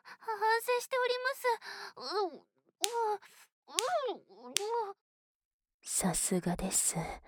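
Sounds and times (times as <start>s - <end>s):
speech: 0.8s - 2.5s, 6.0s - 7.2s
penis slapping against a woman's cheek: 2.8s - 3.2s, 3.8s - 4.9s.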